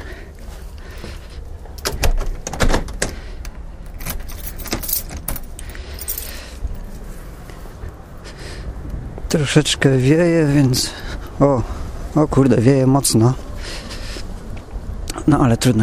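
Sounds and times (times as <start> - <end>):
low steady rumble: 0.0 - 15.8
car keys jangling: 3.8 - 6.6
speech: 9.3 - 13.8, 15.2 - 15.8.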